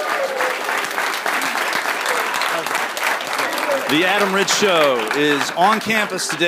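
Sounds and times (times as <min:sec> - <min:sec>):
live audience applause at a national convention in Orlando Florida: 0:00.0 - 0:06.4
speech: 0:03.9 - 0:06.4.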